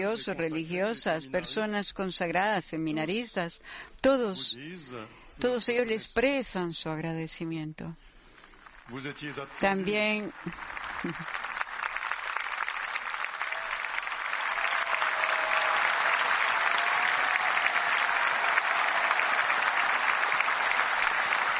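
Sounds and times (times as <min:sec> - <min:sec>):
speech: 0:00.0 - 0:08.1, 0:08.9 - 0:11.5
audience applause at the Pope's visit to Paris: 0:08.5 - 0:21.5.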